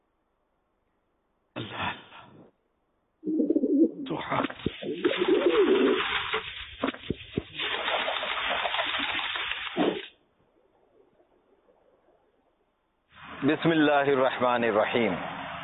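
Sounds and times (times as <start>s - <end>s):
steady hiss: 0.0s - 7.4s, 9.7s - 15.6s
pigeons cooing: 3.2s - 6.4s
fluttering: 4.2s - 10.2s
speech: 13.5s - 15.3s.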